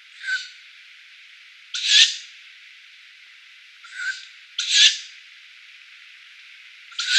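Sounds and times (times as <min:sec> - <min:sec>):
downy young tawny owls making hissing screeches: 0:01.8 - 0:02.2, 0:03.8 - 0:05.1, 0:06.9 - 0:07.1.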